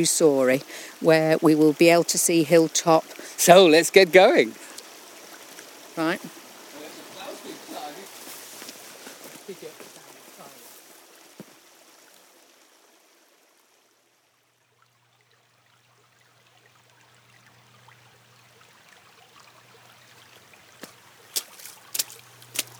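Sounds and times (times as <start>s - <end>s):
speech: 0.0s - 4.7s, 6.0s - 6.4s
trickling stream water: 0.0s - 22.7s
splashes of someone wading through shallow stream water: 14.9s - 22.7s
low hum: 15.0s - 22.7s.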